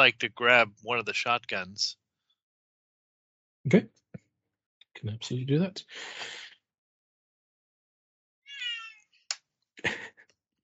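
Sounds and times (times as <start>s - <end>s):
speech: 0.0s - 2.0s, 3.6s - 4.0s, 5.0s - 6.4s, 9.8s - 10.1s
cat meowing: 8.5s - 9.0s.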